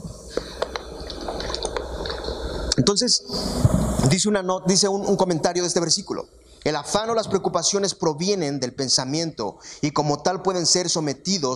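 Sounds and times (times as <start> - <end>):
quiet hiss: 0.0 - 11.5
person drinking water with sips and swallowing clicks: 0.4 - 2.4
speech: 2.8 - 11.5.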